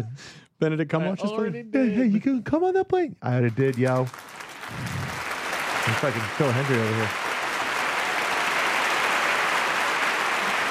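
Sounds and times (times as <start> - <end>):
speech: 0.0 - 5.0, 5.8 - 7.2
crowd applause: 3.5 - 10.6.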